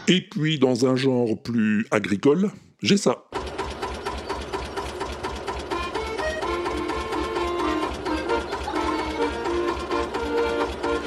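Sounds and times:
speech: 0.1 - 3.4
tractor engine chugging: 3.3 - 11.0
man playing an accordion melody in front of his farm: 5.6 - 11.0.

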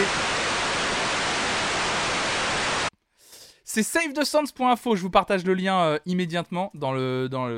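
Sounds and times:
analog TV static snow hiss: 0.0 - 2.9
speech: 3.7 - 7.5.

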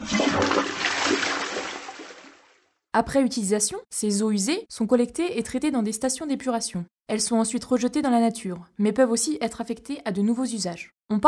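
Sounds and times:
toilet flushing: 0.0 - 2.5
speech: 3.0 - 11.2.

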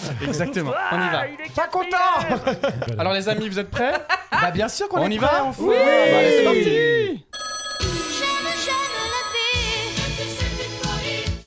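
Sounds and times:
speech: 0.1 - 7.3
laughter: 2.2 - 4.6
phone ringtone announcing an incoming call: 7.3 - 10.5.

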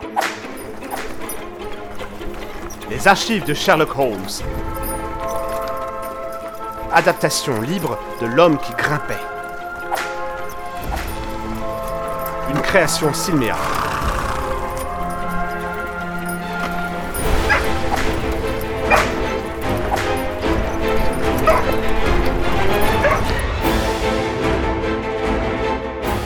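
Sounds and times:
steady tonal background: 0.0 - 26.2
speech: 2.9 - 4.8, 6.9 - 9.3, 12.6 - 13.8
dog barking: 17.3 - 20.2, 21.2 - 21.9, 22.8 - 23.6
dog yipping and whimpering: 17.4 - 18.0, 21.4 - 21.8, 22.6 - 23.5.

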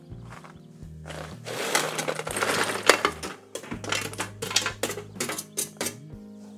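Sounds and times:
dried fruit being stirred and coated in a bowl: 0.3 - 6.0
utensils clinking in a bowl: 1.1 - 6.0.

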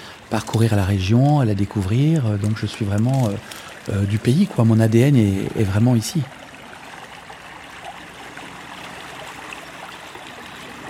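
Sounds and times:
small river stream flowing from Créqui: 0.0 - 10.8
speech: 0.3 - 6.4.

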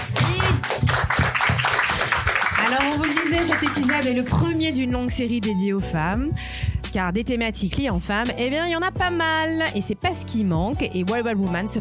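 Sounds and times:
small group clapping: 0.0 - 4.4
speech: 2.7 - 11.7.

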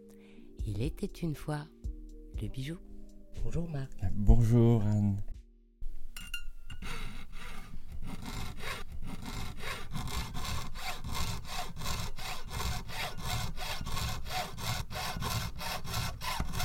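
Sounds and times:
speech: 0.7 - 1.8, 2.4 - 5.3
jeweler's piercing saw cutting through metal: 6.7 - 16.6.

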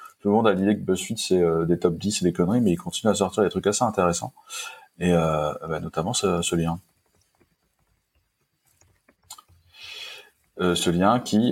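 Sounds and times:
speech: 0.2 - 6.9, 10.6 - 11.4
brief louder rustling hiss: 0.9 - 11.4
person typing on a computer keyboard: 6.9 - 9.6.

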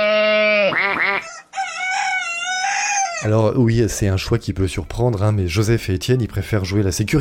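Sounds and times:
rooster crowing: 1.0 - 3.3
speech: 3.2 - 7.1.

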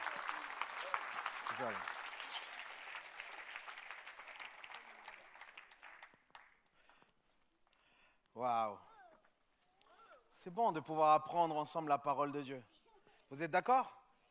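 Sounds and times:
crowd applauding: 0.0 - 7.0
speech: 1.6 - 2.0, 8.4 - 8.9, 10.4 - 14.0.

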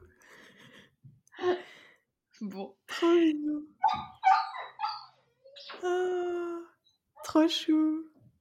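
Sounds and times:
speech: 2.4 - 4.0, 7.4 - 8.0
dog whimpering with whining cries: 3.8 - 7.3.

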